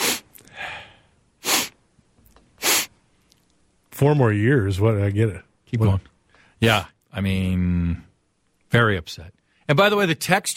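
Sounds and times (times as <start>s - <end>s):
loud sharp nasal sniffing: 0.0s - 1.8s, 2.6s - 3.0s
softer breathy intake: 0.0s - 1.8s
speech: 4.0s - 8.1s, 8.7s - 10.5s.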